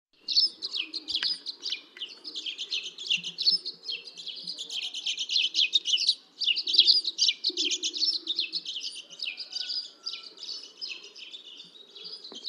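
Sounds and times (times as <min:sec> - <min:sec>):
Dead Sea sparrow Passer moabiticus chattering: 0:00.3 - 0:10.3.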